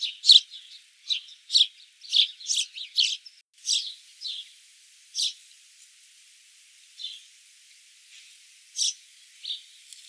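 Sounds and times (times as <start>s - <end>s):
House sparrow Passer domesticus chirps: 0.0s - 4.6s, 5.2s - 5.4s, 8.8s - 9.8s.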